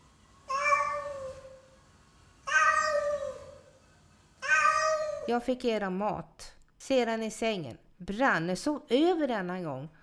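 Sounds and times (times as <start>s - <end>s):
cat meowing: 0.5s - 1.6s, 2.5s - 3.6s, 4.4s - 5.3s
speech: 5.3s - 10.0s.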